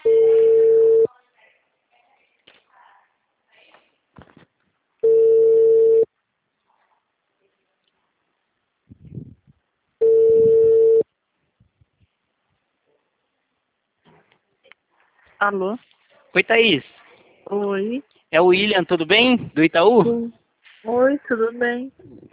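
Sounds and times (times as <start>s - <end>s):
phone ringback tone while calling someone: 0.0s - 1.1s, 5.0s - 6.1s, 10.0s - 11.1s
speech: 15.4s - 22.3s.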